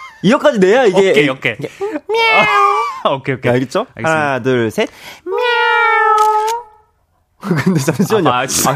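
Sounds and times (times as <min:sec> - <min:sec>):
speech: 0:00.2 - 0:05.6, 0:07.4 - 0:08.7
person imitating cat meow: 0:02.1 - 0:02.9, 0:05.3 - 0:06.8
laughter: 0:07.4 - 0:08.7.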